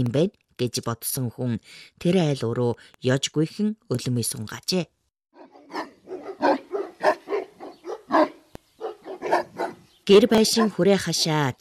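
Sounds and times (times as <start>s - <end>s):
speech: 0.0s - 5.0s, 10.1s - 11.5s
guard dog barking at a homestead: 5.4s - 11.3s.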